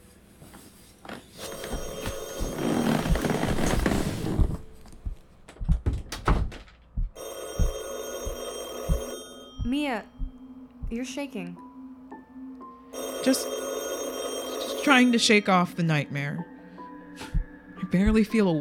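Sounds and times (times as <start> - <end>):
landline telephone in a living room ringing: 1.4 - 4.3, 7.2 - 10.2, 12.9 - 15.7
dull thumps and knocks: 1.7 - 11.0
speech: 9.9 - 10.1, 10.9 - 11.6, 13.2 - 13.6, 14.8 - 16.5, 17.9 - 18.5.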